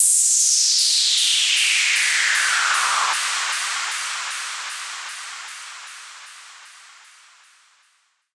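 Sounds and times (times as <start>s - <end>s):
noisy electro-pop fall effect: 1.4s - 5.8s.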